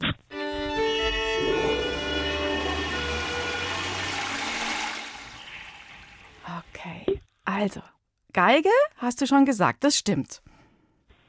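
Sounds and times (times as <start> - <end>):
toilet flushing: 0.9 - 6.7
speech: 7.6 - 10.4.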